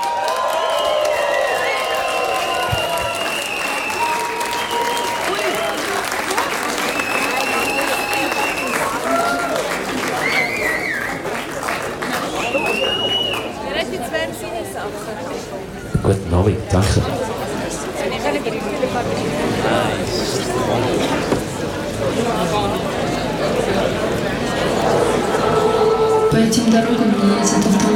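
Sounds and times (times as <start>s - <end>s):
scattered cheers and whistles from the audience: 0.0s - 11.4s, 12.2s - 13.6s
loud sustained applause from a large audience welcoming a band onto the stage: 0.0s - 13.6s
crowd murmur: 0.0s - 27.9s.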